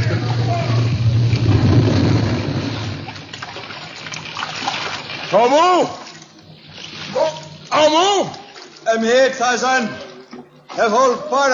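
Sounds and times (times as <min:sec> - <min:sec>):
low rumble: 0:00.0 - 0:03.5
sea water splashing as people leap from a ship: 0:00.0 - 0:11.5
speech: 0:05.4 - 0:06.0, 0:07.9 - 0:10.1, 0:10.8 - 0:11.5.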